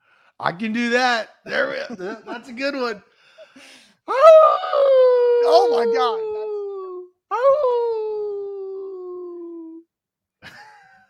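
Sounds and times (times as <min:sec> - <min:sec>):
speech: 0:00.4 - 0:06.4, 0:07.3 - 0:07.8
person imitating a wolf howl: 0:04.1 - 0:09.8.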